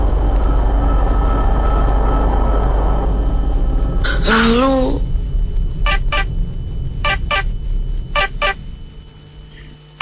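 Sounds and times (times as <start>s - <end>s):
low steady rumbling background: 0.0s - 10.0s
speech: 4.3s - 5.0s
telephone ringing in double trills: 5.9s - 6.3s, 7.0s - 7.5s, 8.2s - 8.6s.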